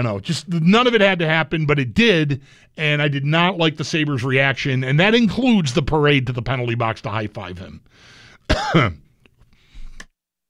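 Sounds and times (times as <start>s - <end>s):
speech: 0.0s - 9.0s
man coughing: 8.5s - 9.1s.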